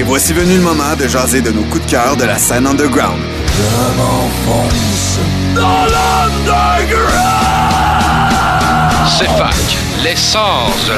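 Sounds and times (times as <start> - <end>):
speech: 0.0 - 7.8, 9.0 - 10.9
radio show jingle with shouted vocals over musical backing: 5.6 - 10.9.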